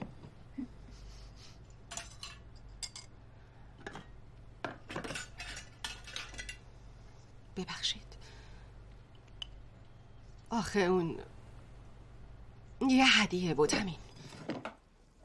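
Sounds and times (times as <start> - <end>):
low steady hum: 0.0 - 15.2
plates and cutlery clinking: 1.9 - 3.1, 4.7 - 6.6
speech: 7.6 - 8.0, 10.5 - 11.4, 12.9 - 14.0.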